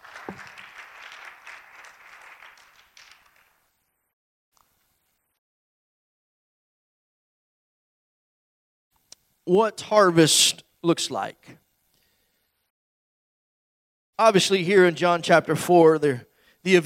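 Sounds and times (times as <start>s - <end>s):
standing crowd clapping after a prayer: 0.0s - 3.8s
speech: 9.5s - 11.6s, 14.2s - 16.8s.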